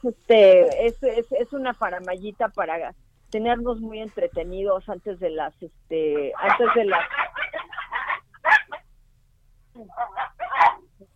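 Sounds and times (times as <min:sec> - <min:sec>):
speech: 0:00.0 - 0:08.0, 0:09.8 - 0:11.1
puppies squabbling with yelps and squeals: 0:06.3 - 0:08.8, 0:09.9 - 0:10.8.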